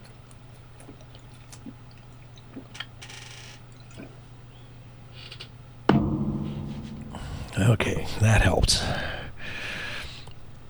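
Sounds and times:
steady low electrical hum: 0.0 - 10.6
person drinking water: 0.6 - 3.0, 3.8 - 4.3
speech: 7.7 - 9.1.

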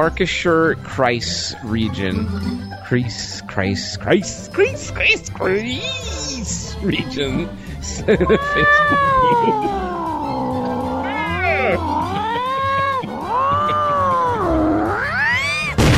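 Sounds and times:
speech: 0.0 - 9.9
laughter: 4.2 - 15.3
cat yowling and meowing: 5.6 - 6.6, 8.1 - 15.8.

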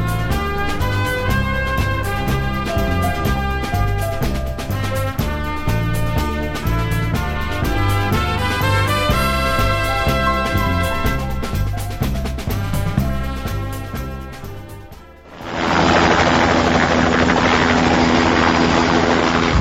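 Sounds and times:
air rescue service helicopter flying: 0.0 - 19.6.

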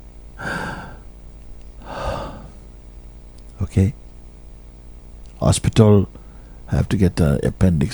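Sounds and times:
weak labored breathing and gasps: 0.4 - 1.1, 1.8 - 2.7, 6.2 - 6.7
speech: 3.6 - 4.0, 5.4 - 7.9.

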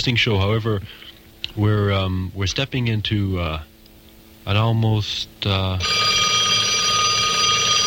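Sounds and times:
speech: 0.0 - 3.7, 4.5 - 6.1
telephone ringing in a live radio studio: 5.8 - 7.8.

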